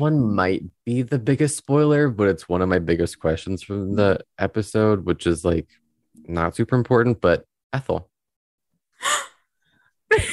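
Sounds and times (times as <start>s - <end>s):
speech: 0.0s - 8.1s
sharp breathy gasp of surprise: 9.0s - 9.5s.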